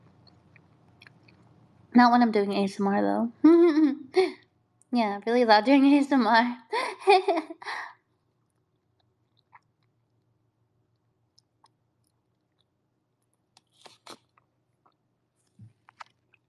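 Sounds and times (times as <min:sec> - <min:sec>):
faint clicks and smacks: 0:00.0 - 0:01.9, 0:08.0 - 0:16.4
cold noodles being chewed: 0:00.2 - 0:01.6, 0:08.2 - 0:10.3, 0:10.9 - 0:16.4
speech: 0:01.9 - 0:07.9.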